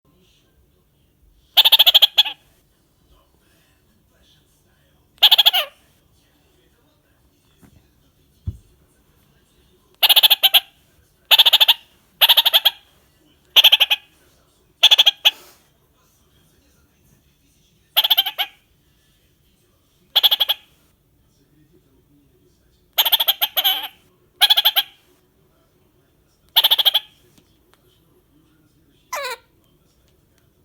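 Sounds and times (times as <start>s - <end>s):
Cyanoramphus malherbi kakariki parrot singing: 1.6s - 2.4s, 5.2s - 5.8s, 10.0s - 10.7s, 11.3s - 12.9s, 13.6s - 14.1s, 14.8s - 15.4s, 18.0s - 18.6s, 20.1s - 20.7s, 23.0s - 25.0s, 26.6s - 27.1s, 29.1s - 29.5s.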